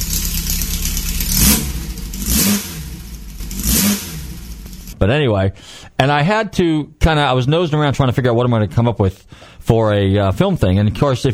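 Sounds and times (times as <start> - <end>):
car engine revving: 0.0 - 5.0
speech: 5.0 - 11.3.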